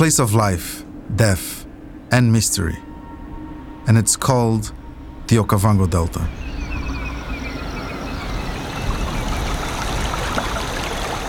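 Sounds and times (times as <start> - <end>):
speech: 0.0 - 2.9, 3.9 - 6.4
faint tonal hum: 0.0 - 11.2
flowing river water: 6.7 - 11.2.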